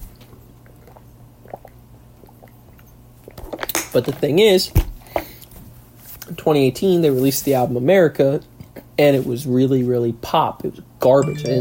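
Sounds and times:
person drinking water with sips and gulps: 0:00.1 - 0:03.4
speech: 0:03.9 - 0:04.9, 0:06.4 - 0:11.6.

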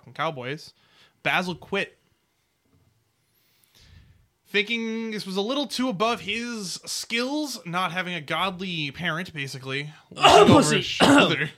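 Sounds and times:
speech: 0:00.1 - 0:02.0, 0:04.5 - 0:11.5
throat clearing with something caught in the throat: 0:10.2 - 0:11.5.

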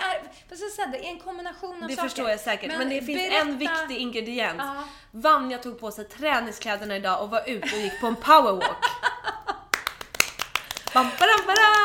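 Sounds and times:
speech: 0:00.5 - 0:09.1, 0:10.9 - 0:11.8
sharp hand claps: 0:09.7 - 0:11.8.

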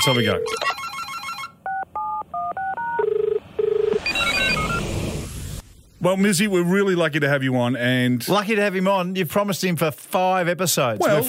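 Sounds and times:
speech: 0:00.0 - 0:00.7, 0:06.0 - 0:11.2
phone keypad dialing beeps: 0:00.0 - 0:04.8
buzzy phone ringing-out tones: 0:00.0 - 0:04.9
high electronic tones: 0:00.0 - 0:05.6.

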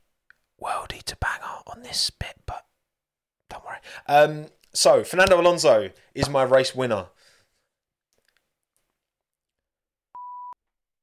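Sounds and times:
speech: 0:00.6 - 0:02.4, 0:03.8 - 0:07.2
censor-style beep tone: 0:10.2 - 0:10.6.

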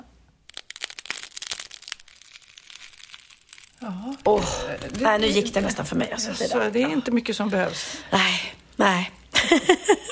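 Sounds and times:
crisp food being chewed: 0:00.4 - 0:05.6
speech: 0:03.8 - 0:10.1
laughter: 0:09.4 - 0:10.1.

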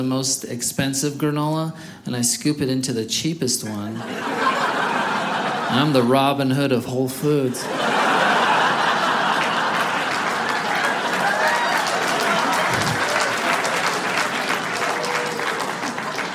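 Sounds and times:
speech: 0:00.0 - 0:04.6, 0:05.7 - 0:08.0
laughter: 0:04.0 - 0:06.3, 0:07.6 - 0:16.3
crowd applauding: 0:07.8 - 0:16.3.

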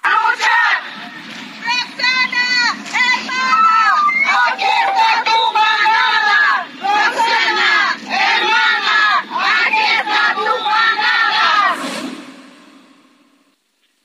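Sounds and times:
crowd of women chanting and shouting slogans at a street demonstration: 0:00.0 - 0:12.1.

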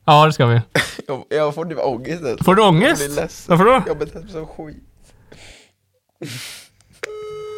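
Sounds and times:
speech: 0:00.1 - 0:05.6, 0:06.2 - 0:06.6
laughter: 0:01.9 - 0:05.0
breathy exhales: 0:04.8 - 0:06.7
telephone ringback tone while placing a call: 0:07.1 - 0:07.5.

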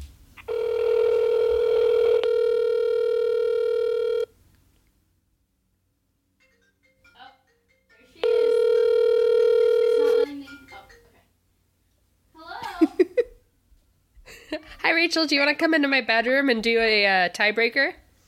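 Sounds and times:
outgoing phone call ringback tones: 0:00.4 - 0:04.3, 0:08.0 - 0:11.0
voice answering phone: 0:00.5 - 0:04.3, 0:08.2 - 0:10.5
speech: 0:15.0 - 0:18.0.

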